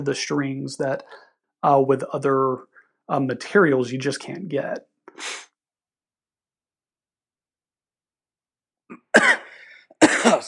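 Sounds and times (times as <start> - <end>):
speech: 0.0 - 5.5
person coughing from something caught in the throat: 8.9 - 10.4.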